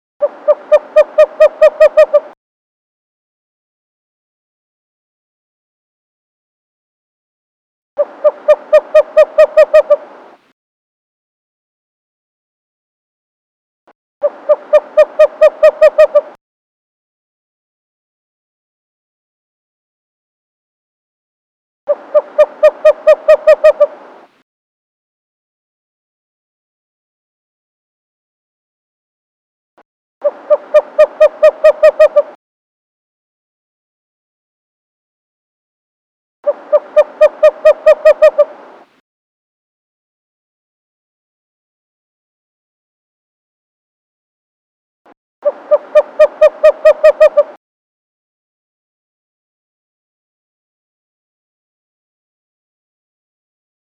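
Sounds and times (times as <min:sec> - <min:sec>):
Western Screech Owl calling: 0:00.2 - 0:02.4, 0:08.0 - 0:10.4, 0:14.2 - 0:16.4, 0:21.9 - 0:24.3, 0:30.2 - 0:32.4, 0:36.5 - 0:38.9, 0:45.4 - 0:47.6.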